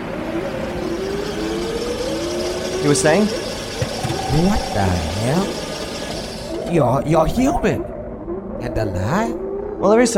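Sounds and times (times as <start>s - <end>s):
arriving car engine revving: 0.0s - 7.2s
speech: 2.8s - 3.4s, 4.3s - 5.6s, 6.7s - 7.9s, 8.6s - 10.1s.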